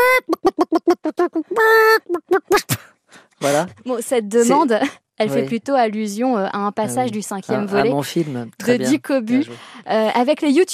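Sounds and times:
person imitating a hen clucking: 0:00.0 - 0:02.8
speech: 0:03.5 - 0:10.7.

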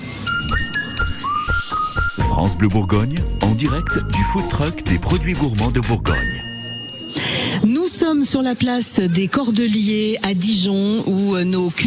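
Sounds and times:
whistled melody: 0:00.2 - 0:07.2
speech: 0:02.4 - 0:06.5, 0:08.1 - 0:11.8.

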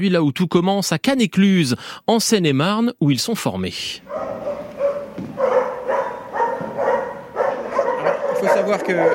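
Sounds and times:
speech: 0:00.0 - 0:04.6, 0:08.4 - 0:09.1
police dogs barking in kennel boxes: 0:04.0 - 0:09.1.

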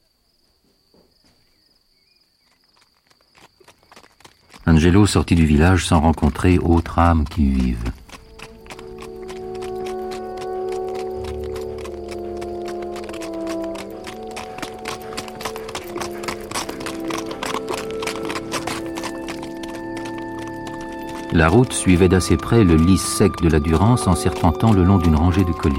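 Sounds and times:
trotting horse hooves on a hard road along the dry bed of the Durance: 0:02.4 - 0:25.7
speech: 0:04.7 - 0:08.0, 0:21.4 - 0:25.7.

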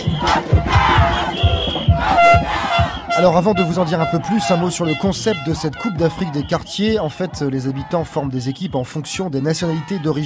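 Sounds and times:
shrill horn or whistle blasts: 0:00.0 - 0:07.2
large crowd of football supporters chanting and cheering: 0:00.0 - 0:10.2
rhythmic drum-like beats: 0:00.0 - 0:10.2
speech: 0:03.2 - 0:10.2.

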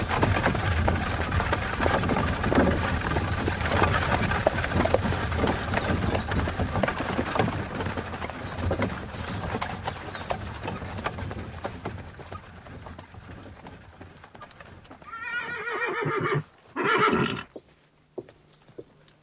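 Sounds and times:
carriage horse hooves clip-clopping: 0:00.0 - 0:19.2
carriage horse whinnying: 0:15.0 - 0:17.5.

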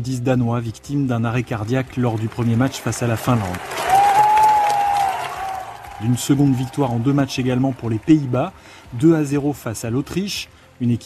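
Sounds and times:
speech: 0:00.0 - 0:04.0, 0:06.0 - 0:11.0
stadium crowd applauding at a football match: 0:01.2 - 0:10.1
stadium crowd roar at a football match: 0:03.2 - 0:08.5.

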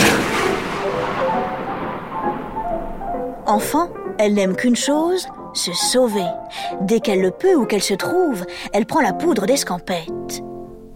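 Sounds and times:
rain in a heavy night thunderstorm: 0:00.0 - 0:04.2
thunder in a heavy night thunderstorm: 0:00.0 - 0:04.2
speech: 0:03.5 - 0:10.5.

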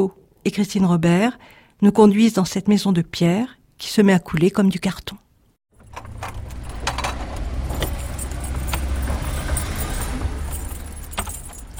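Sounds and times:
speech: 0:00.0 - 0:05.2
keys jangling and scraping in the door lock of a stone house: 0:05.8 - 0:11.7.

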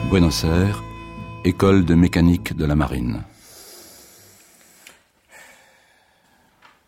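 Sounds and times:
speech: 0:00.1 - 0:00.9, 0:01.4 - 0:03.3
heavy rasping breathing: 0:03.3 - 0:06.6.

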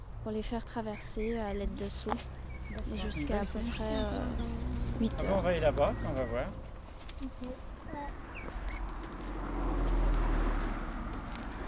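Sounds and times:
steady low roadside traffic rumble: 0:00.0 - 0:11.6
speech: 0:00.2 - 0:06.6, 0:07.2 - 0:08.2
vehicle rushing past: 0:02.2 - 0:07.0, 0:07.6 - 0:11.6.

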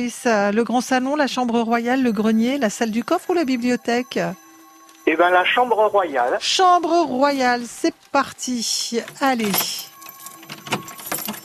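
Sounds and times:
speech: 0:00.0 - 0:04.4, 0:05.1 - 0:09.9
bunch of keys jangling: 0:08.9 - 0:11.4.

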